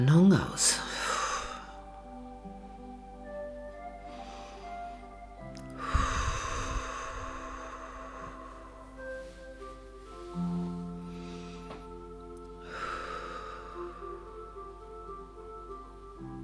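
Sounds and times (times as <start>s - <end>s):
speech: 0.0s - 1.0s
steady quiet musical drone: 0.0s - 16.4s
slow deep breaths in and out during a guided relaxation: 0.8s - 2.1s, 3.8s - 14.5s.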